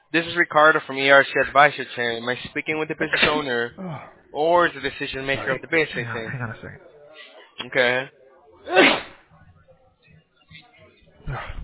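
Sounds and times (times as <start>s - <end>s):
faint voices: 0.0s - 11.6s
speech: 0.1s - 6.9s, 7.6s - 9.1s
laughter: 5.3s - 7.3s
loud sneeze: 8.7s - 9.3s.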